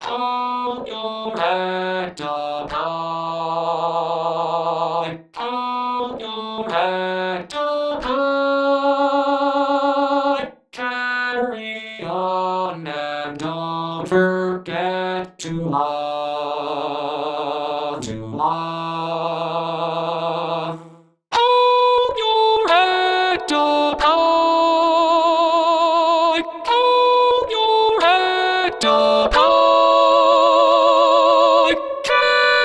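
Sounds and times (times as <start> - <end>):
vocals: 0.0 - 32.6.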